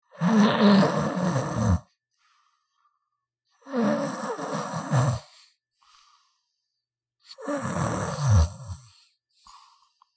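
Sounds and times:
man snoring violently with heavy snorts: 0:00.2 - 0:01.8, 0:03.7 - 0:05.3, 0:07.4 - 0:08.9.

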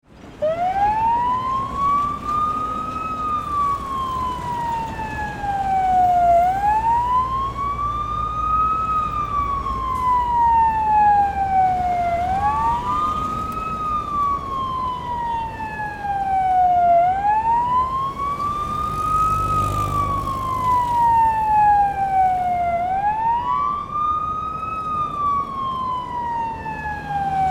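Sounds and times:
fire truck passing by: 0:00.1 - 0:27.4
fire truck siren: 0:00.3 - 0:27.4.

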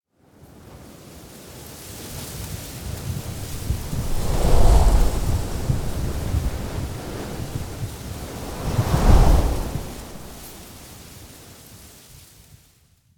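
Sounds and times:
strong desert wind blowing sand and dust: 0:03.0 - 0:11.0.

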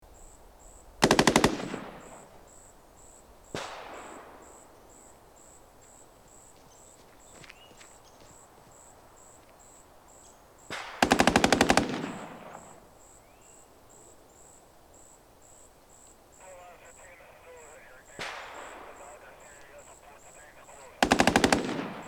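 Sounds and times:
distant gunshots on a nighttime battlefield: 0:01.0 - 0:02.3, 0:03.5 - 0:04.7, 0:10.7 - 0:12.9, 0:16.4 - 0:22.0.

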